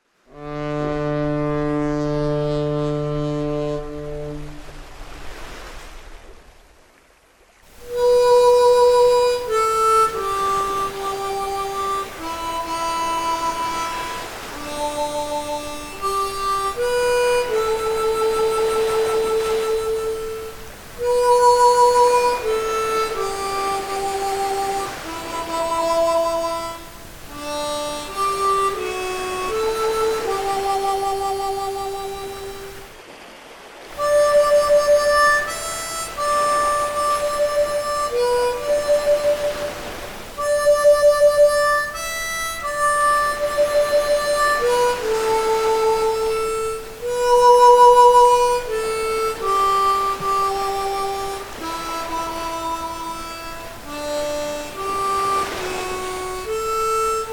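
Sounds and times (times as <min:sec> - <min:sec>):
harmonica solo in G for funeral services: 0:00.3 - 0:04.7, 0:07.7 - 0:32.9, 0:33.9 - 0:57.3.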